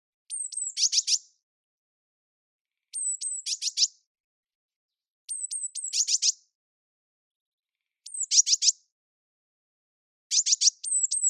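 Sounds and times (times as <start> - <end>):
Eurasian blue tit Cyanistes caeruleus calling thin notes and buzzy churring: 0.3 - 1.3, 2.9 - 4.0, 5.3 - 6.4, 8.0 - 8.8, 10.3 - 11.2.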